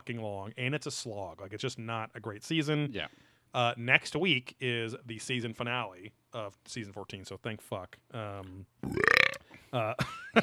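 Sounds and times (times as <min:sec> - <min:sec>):
speech: 0:00.0 - 0:10.4
loud drawn-out rattling burp: 0:08.8 - 0:09.5.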